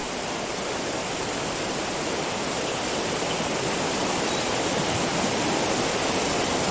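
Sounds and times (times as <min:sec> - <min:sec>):
rushing water of a swollen river: 0:00.0 - 0:06.7.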